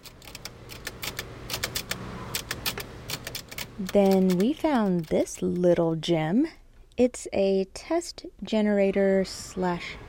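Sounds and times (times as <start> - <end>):
manual typewriter keystrokes: 0.0 - 5.6
speech: 3.8 - 10.0.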